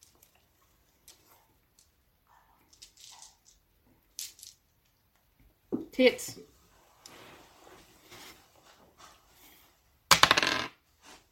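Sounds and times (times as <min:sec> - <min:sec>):
speech: 0:06.0 - 0:06.5
percentile dice clattering across a hard tabletop: 0:10.1 - 0:10.8.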